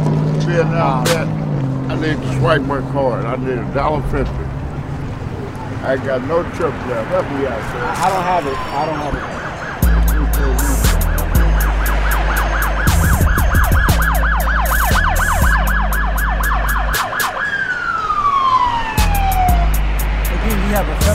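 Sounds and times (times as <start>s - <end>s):
speech: 0.5s - 4.5s, 5.8s - 9.4s
police car siren at the exit of a metro station in Atlanta: 4.9s - 21.1s.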